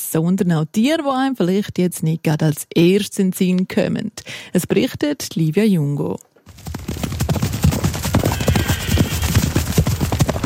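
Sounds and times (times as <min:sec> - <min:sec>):
speech: 0:00.1 - 0:06.8
horses galloping over a mountain pasture in the Safiental in Switzerland: 0:06.5 - 0:10.4.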